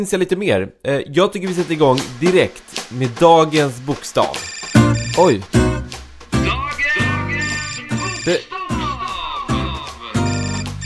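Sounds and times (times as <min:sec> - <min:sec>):
speech: 0:00.0 - 0:04.6, 0:05.2 - 0:05.6, 0:08.2 - 0:08.8
phone ringing with a melodic ringtone: 0:04.4 - 0:08.6, 0:10.2 - 0:10.8.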